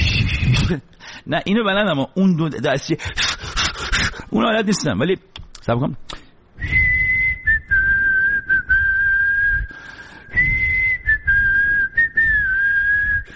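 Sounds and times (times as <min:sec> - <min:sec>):
speech: 0:00.6 - 0:03.3, 0:04.3 - 0:06.8
person whistling with the mouth: 0:06.6 - 0:13.3.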